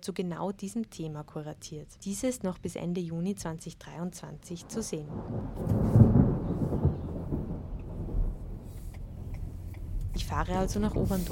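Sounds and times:
speech: 0.0s - 6.2s, 10.2s - 11.3s
deep continuous rumble of thunder: 4.6s - 11.3s
steady rain: 4.6s - 11.3s.

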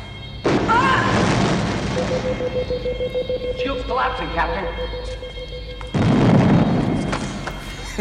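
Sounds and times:
explosion sound effect for starship weapons fire in a stage battle scene: 0.4s - 2.5s, 5.9s - 7.3s
speech: 2.1s - 5.3s.

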